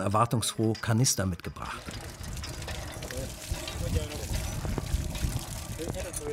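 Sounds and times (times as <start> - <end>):
speech: 0.0 - 2.1
water gushing from a newly drilled village well's hand pump spout: 1.5 - 6.3.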